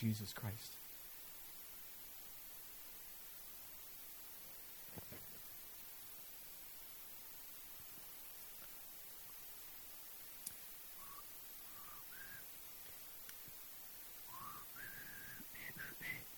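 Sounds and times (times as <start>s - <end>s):
speech: 0.0s - 0.8s
steady hiss: 0.0s - 16.3s
faint breathy failed whistling by a person: 11.0s - 12.5s, 14.2s - 16.3s.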